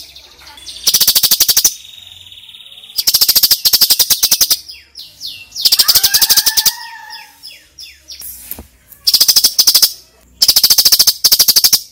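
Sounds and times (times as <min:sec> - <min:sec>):
female sooty-headed bulbul chips and chatter: 0:00.0 - 0:11.8.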